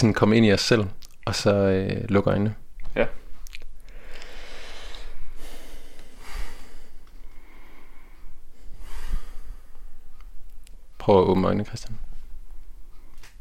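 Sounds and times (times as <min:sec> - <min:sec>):
speech: 0:00.0 - 0:03.2, 0:11.1 - 0:12.1
man taking slow deep breaths during a guided relaxation exercise: 0:03.8 - 0:10.4.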